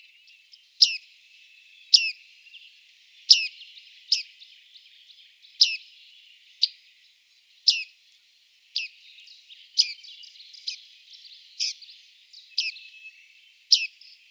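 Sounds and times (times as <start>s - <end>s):
bearded reedling ping calls: 0.8s - 1.0s, 1.9s - 2.2s, 3.3s - 3.5s, 5.6s - 5.9s, 7.7s - 7.9s, 9.7s - 10.8s, 11.6s - 11.9s, 12.5s - 12.9s, 13.7s - 14.0s.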